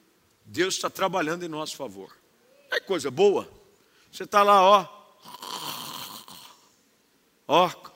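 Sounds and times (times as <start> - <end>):
speech: 0.5 - 2.2, 2.9 - 5.4, 7.5 - 7.9
preacher imitating a snore with his voice: 5.2 - 6.6.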